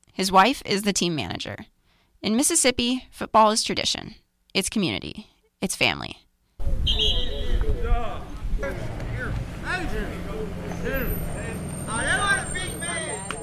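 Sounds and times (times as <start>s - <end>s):
speech: 0.2s - 6.2s
murmur of voices: 6.6s - 13.4s
large school bus engine rumbling and idling: 6.7s - 13.4s
school bus brakes screeching to a stop: 10.4s - 13.4s.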